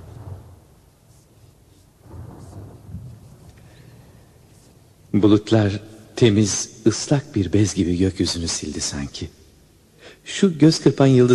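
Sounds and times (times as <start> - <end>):
thunder rumbling through a summer rain shower: 0.0 - 1.2, 2.0 - 4.5
speech: 5.2 - 9.4, 10.2 - 11.3.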